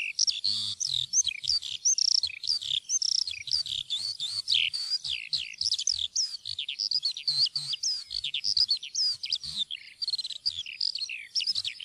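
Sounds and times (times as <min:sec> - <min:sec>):
Eurasian skylark song: 0:00.0 - 0:11.8.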